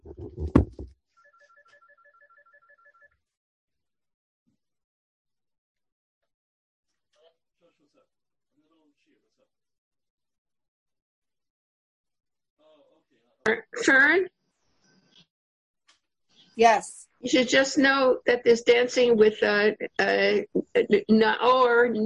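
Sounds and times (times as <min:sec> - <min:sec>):
thump: 0:00.2 - 0:00.9
phone ringing with a rapid pulsing electronic trill: 0:01.2 - 0:03.1
speech: 0:13.5 - 0:14.4, 0:16.6 - 0:22.0.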